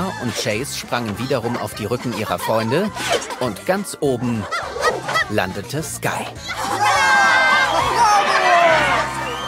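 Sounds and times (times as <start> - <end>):
laughter: 0.0 - 9.4
speech: 0.2 - 6.8
audience cheering and whooping with excitement: 6.5 - 9.4.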